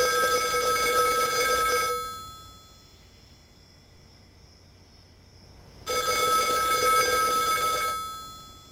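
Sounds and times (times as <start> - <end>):
payphone ringing in a campus phone booth: 0.0 - 2.8, 5.9 - 8.7.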